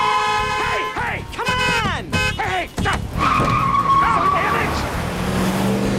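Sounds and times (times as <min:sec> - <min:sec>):
steady road rumble: 0:00.0 - 0:05.9
car tires screeching: 0:00.2 - 0:05.9
car engine revving and pulling away: 0:02.9 - 0:05.9.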